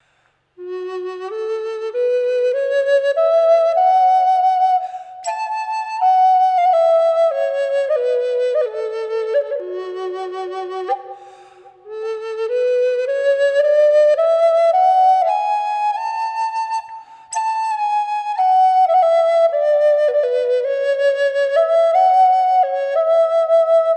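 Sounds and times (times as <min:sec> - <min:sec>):
amboyna flute playing F sharp wet: 0:00.6 - 0:23.9.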